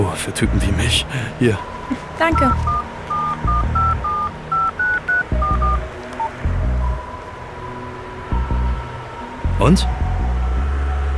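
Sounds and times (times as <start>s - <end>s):
low steady phone tone: 0.0s - 11.1s
speech: 0.2s - 2.8s, 9.6s - 10.0s
mobile phone keypad dialing tones: 2.3s - 6.3s.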